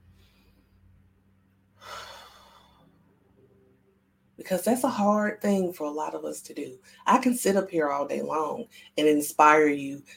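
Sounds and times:
soft breath during a guided spiritual session: 0:00.0 - 0:01.0, 0:01.7 - 0:03.0
low steady hum: 0:00.0 - 0:10.1
speech: 0:04.4 - 0:10.1.

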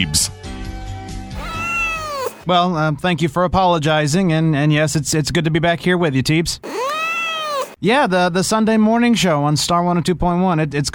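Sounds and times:
speech: 0:00.0 - 0:00.4, 0:02.4 - 0:06.8, 0:07.8 - 0:10.9
cat meowing: 0:01.4 - 0:02.5, 0:06.6 - 0:07.8.

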